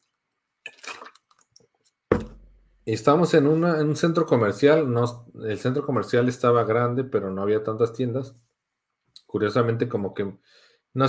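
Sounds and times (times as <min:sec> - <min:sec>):
sharper fuller gulp: 0:00.6 - 0:01.5
sipping water: 0:00.6 - 0:02.3
speech: 0:02.9 - 0:08.4, 0:09.3 - 0:11.0.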